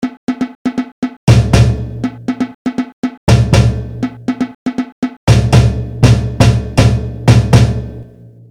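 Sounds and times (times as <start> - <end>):
samba reggae intro break: 0.0 - 8.0.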